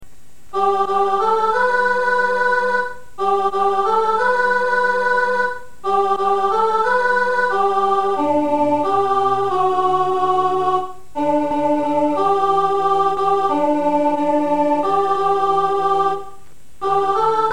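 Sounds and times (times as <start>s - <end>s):
alto part: 0.5s - 17.5s.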